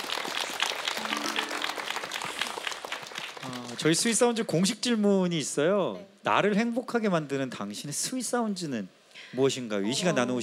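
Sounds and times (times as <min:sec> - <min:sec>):
group clapping: 0:00.0 - 0:04.3
speech: 0:03.4 - 0:10.4.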